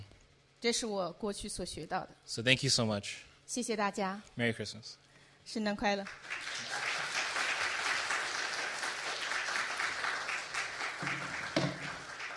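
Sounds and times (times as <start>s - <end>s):
speech: 0.6s - 6.8s
audience applause: 6.0s - 12.3s.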